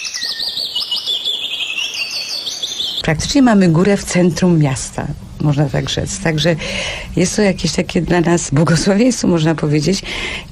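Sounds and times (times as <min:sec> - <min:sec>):
birds singing in a quiet mountain landscape: 0:00.0 - 0:04.7
speech: 0:03.1 - 0:10.4.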